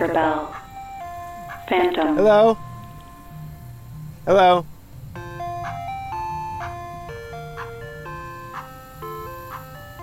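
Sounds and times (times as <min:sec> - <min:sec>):
speech: 0:00.0 - 0:00.6, 0:01.7 - 0:02.7, 0:04.2 - 0:04.7
ice cream truck chiming electronic jingle: 0:00.0 - 0:04.4, 0:05.0 - 0:10.0.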